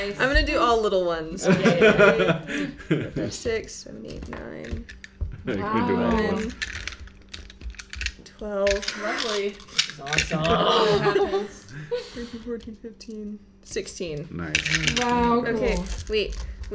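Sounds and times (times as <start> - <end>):
speech: 0.0 - 6.9, 8.4 - 16.7
laughter: 1.3 - 3.4, 5.4 - 6.4, 10.0 - 12.6
plastic dice rattling and clattering on a hard surface: 6.2 - 10.6, 14.5 - 16.7.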